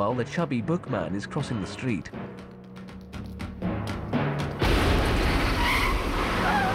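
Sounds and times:
speech: 0.1s - 2.5s
cab crashing into parked cars: 4.6s - 6.7s
rumbling debris: 4.6s - 6.7s
trash can explosion: 4.6s - 6.7s
tires skidding: 5.0s - 6.7s.

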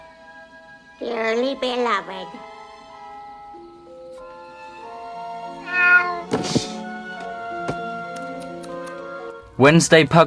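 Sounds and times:
speech: 1.0s - 2.5s, 9.6s - 10.2s
live cat meowing inside a buried shoebox: 5.5s - 6.3s.

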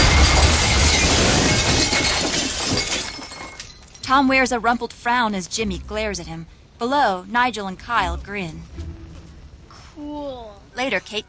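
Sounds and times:
glass and crockery smashing as a flaming boat motor crushes a buffet table: 0.0s - 4.1s
speech: 4.1s - 8.9s, 10.0s - 11.2s.

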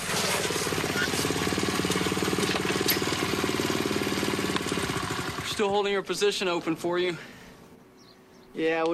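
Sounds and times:
small motorbike engine revving while riding around a driveway: 0.0s - 5.6s
speech: 5.6s - 7.3s, 8.5s - 8.9s.

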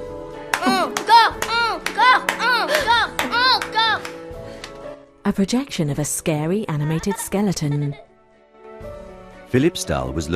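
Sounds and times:
quick hand claps by one excited person: 0.4s - 4.8s
speech: 5.3s - 8.1s, 9.5s - 10.3s.

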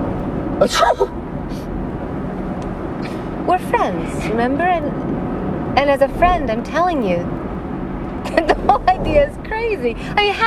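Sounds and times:
steady low rumble: 0.0s - 10.4s
person sneezing: 0.6s - 1.1s
speech: 0.6s - 1.2s, 3.4s - 5.2s, 5.8s - 7.4s, 8.2s - 10.4s.

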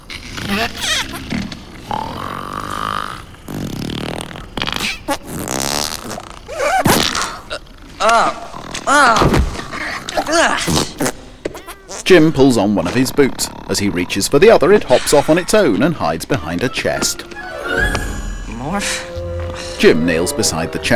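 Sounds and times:
cartoonish fart noises from a sleeping crew member in a hammock: 0.0s - 18.8s
speech: 0.5s - 1.2s, 8.0s - 9.4s, 12.1s - 17.9s, 18.8s - 19.1s, 19.8s - 20.9s.

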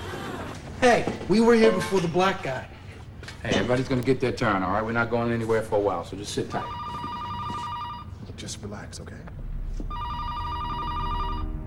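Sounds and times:
low noise: 0.0s - 11.6s
speech: 0.8s - 2.8s, 3.4s - 6.8s, 8.6s - 9.4s
electronic telephone ringing on a hospital emergency-room reception desk: 6.5s - 8.2s, 9.9s - 11.6s.

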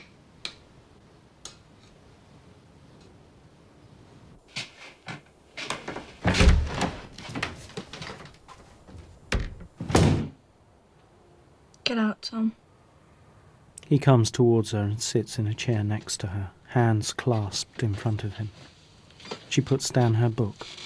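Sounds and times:
bedroom door being closed: 5.6s - 10.4s
handling noises: 5.6s - 10.4s
clicks and knocks: 5.7s - 9.9s
speech: 11.9s - 12.6s, 13.9s - 20.8s.

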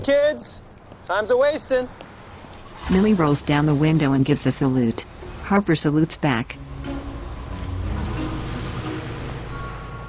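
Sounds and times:
speech: 0.0s - 2.1s, 2.8s - 7.0s
car engine humming as the car pulls away: 2.0s - 10.0s.

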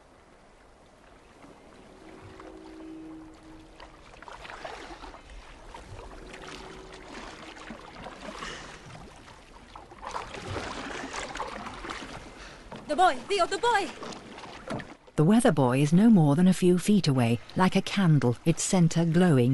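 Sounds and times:
rowing a boat through foggy water: 0.0s - 15.2s
speech: 12.9s - 14.1s, 15.2s - 19.5s.

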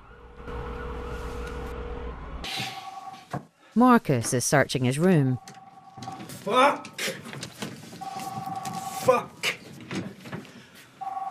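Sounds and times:
ambulance siren arriving at a hospital: 0.0s - 3.3s, 5.4s - 6.4s, 8.0s - 9.3s, 11.0s - 11.2s
speech: 3.8s - 5.6s, 6.4s - 6.9s, 9.0s - 9.3s.

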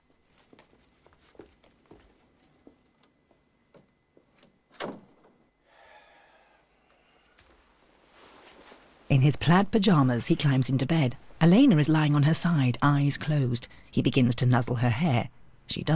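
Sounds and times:
soft rustling hiss: 0.0s - 15.9s
door being closed as someone leaves a room: 4.7s - 5.4s
speech: 9.1s - 15.9s.

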